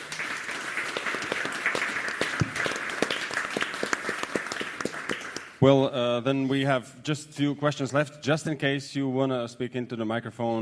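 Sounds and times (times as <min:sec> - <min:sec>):
room full of people applauding: 0:00.0 - 0:05.6
speech: 0:05.6 - 0:10.6.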